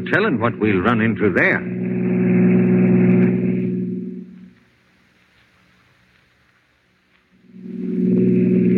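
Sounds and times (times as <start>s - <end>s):
car engine roaring at speed: 0.0s - 4.6s, 7.4s - 8.7s
speech: 0.1s - 1.8s.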